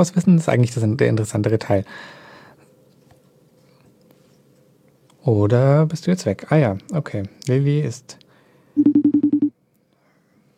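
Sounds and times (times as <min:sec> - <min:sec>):
speech: 0:00.0 - 0:02.2, 0:05.2 - 0:08.2
electronic telephone dialing beeps redialing a dropped call: 0:08.8 - 0:09.5.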